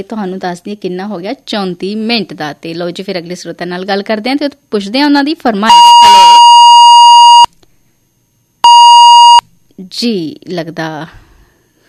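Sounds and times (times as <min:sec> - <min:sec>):
speech: 0:00.0 - 0:06.4, 0:09.9 - 0:11.2
telephone line beeps as a phone-in call cuts off: 0:08.6 - 0:09.4.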